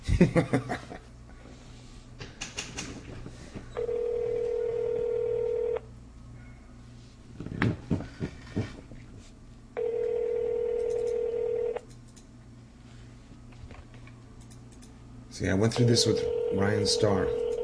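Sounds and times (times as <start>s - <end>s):
speech: 0.2s - 0.7s, 15.4s - 17.4s
ringback tones over a phone line: 3.8s - 5.9s, 9.8s - 11.8s, 15.8s - 17.6s.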